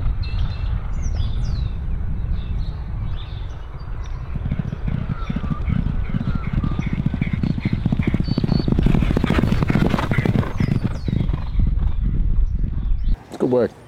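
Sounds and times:
birds chirping faintly: 0:00.1 - 0:13.8
hoofbeats of a horse galloping on a track during a training workout: 0:03.6 - 0:12.9.

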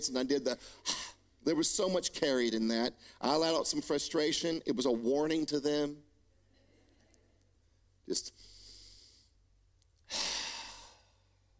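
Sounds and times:
speech: 0:00.0 - 0:06.1, 0:08.1 - 0:08.6
slow airy exhale during a guided breathing exercise: 0:10.1 - 0:11.2.

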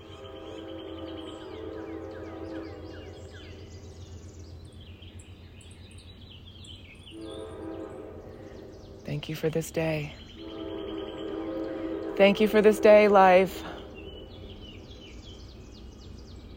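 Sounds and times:
train whistle blasts: 0:00.0 - 0:03.7, 0:07.2 - 0:09.0, 0:10.4 - 0:14.6
passing train rumbling: 0:00.0 - 0:16.5
speech: 0:09.2 - 0:10.2, 0:12.2 - 0:13.7.

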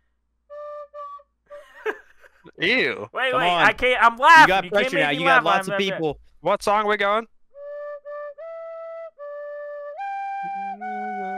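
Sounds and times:
laughter: 0:01.6 - 0:06.0
speech: 0:02.6 - 0:07.3
Irish tin whistle notes: 0:07.6 - 0:11.3.

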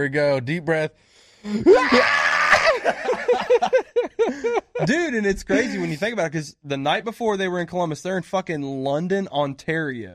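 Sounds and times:
speech: 0:00.0 - 0:10.1
person screaming: 0:01.5 - 0:02.9
laughter: 0:01.6 - 0:06.0.

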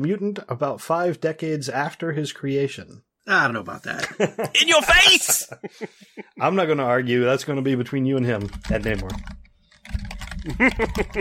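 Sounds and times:
speech: 0:00.0 - 0:09.4, 0:10.4 - 0:11.1
laughter: 0:04.0 - 0:06.4, 0:10.4 - 0:11.1
typing on a computer keyboard: 0:08.2 - 0:11.1.

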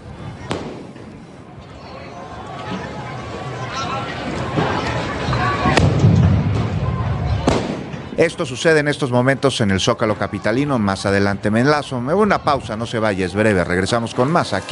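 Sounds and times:
noisy crowd shouting and murmuring at a street protest: 0:00.0 - 0:14.7
firecracker bangs at a street protest: 0:00.5 - 0:01.0, 0:07.4 - 0:08.0
speech: 0:08.2 - 0:14.7.

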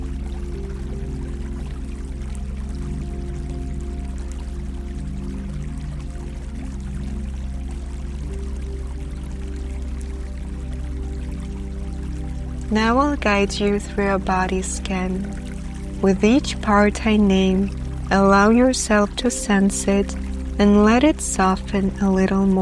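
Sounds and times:
low rumbling undertone of the river: 0:00.0 - 0:22.6
river water bubbling and murmuring: 0:00.0 - 0:22.6
speech: 0:12.7 - 0:22.6.

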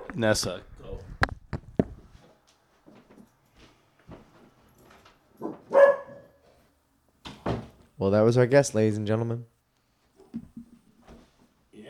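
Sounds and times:
speech: 0:00.1 - 0:00.7, 0:08.0 - 0:09.6
dog barking: 0:05.4 - 0:06.4.

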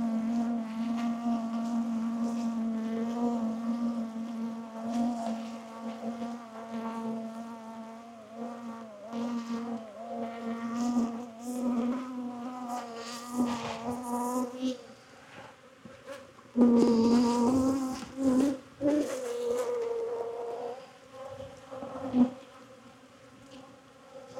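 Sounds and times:
many honeybees buzzing during a hive frame inspection: 0:00.0 - 0:15.0, 0:16.6 - 0:20.9.

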